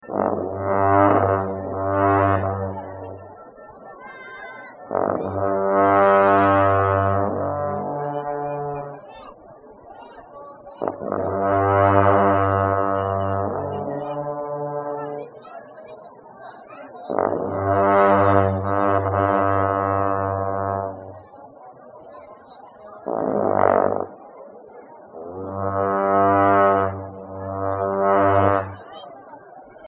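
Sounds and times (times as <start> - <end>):
monks playing horns at Losar: 0.0 - 3.5, 4.8 - 9.2, 10.8 - 15.4, 17.1 - 21.4, 23.0 - 24.3, 25.1 - 29.0.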